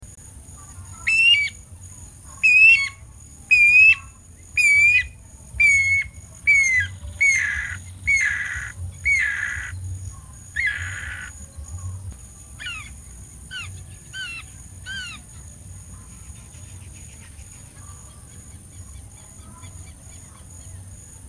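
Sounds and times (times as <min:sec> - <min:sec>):
Guira cuckoo piercing downslurred whistles: 0:01.1 - 0:01.6, 0:02.4 - 0:09.7.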